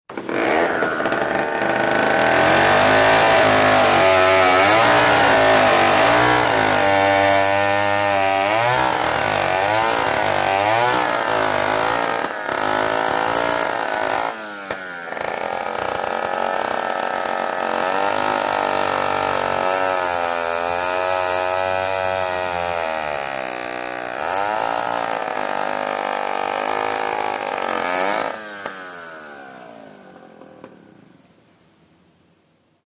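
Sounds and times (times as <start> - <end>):
chainsaw cutting: 0.1 - 30.9.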